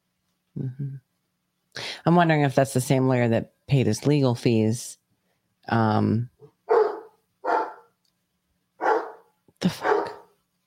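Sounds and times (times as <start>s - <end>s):
speech: 0.6s - 1.1s, 2.0s - 5.0s, 5.7s - 6.3s, 9.6s - 9.9s
dog barking: 6.7s - 8.0s, 8.8s - 10.4s.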